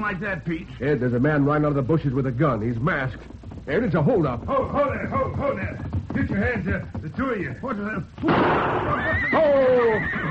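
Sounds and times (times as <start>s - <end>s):
dense noise: 0.0s - 10.2s
speech: 0.0s - 10.2s
frightened horse pulling a carriage whinnying during a holdup: 8.3s - 10.2s.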